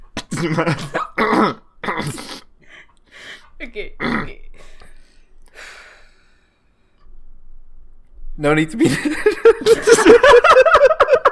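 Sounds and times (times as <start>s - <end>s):
person coughing: 0.2s - 2.5s, 4.0s - 4.4s
speech: 0.4s - 2.3s, 3.6s - 4.6s, 8.4s - 10.6s
faint breath: 2.6s - 3.6s, 4.6s - 7.1s
laughter: 8.8s - 11.3s.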